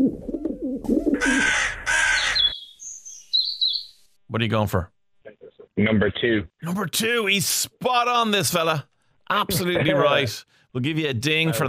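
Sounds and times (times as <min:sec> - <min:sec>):
dove cooing: 0:00.0 - 0:02.5
crow cawing: 0:01.2 - 0:02.7
speech: 0:04.3 - 0:05.0, 0:05.8 - 0:11.6.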